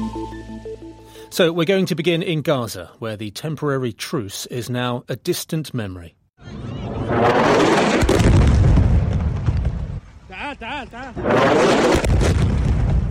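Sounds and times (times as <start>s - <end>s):
wavering tonal sound: 0.0s - 1.1s
speech: 1.3s - 8.3s
missile strikes and explosions hitting apartment buildings: 6.9s - 10.1s, 11.2s - 13.0s.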